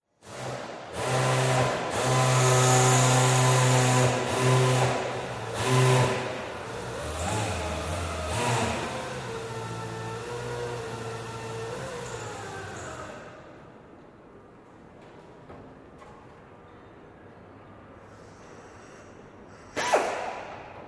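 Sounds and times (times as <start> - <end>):
aircraft hangar ambience: 0.0 - 20.8.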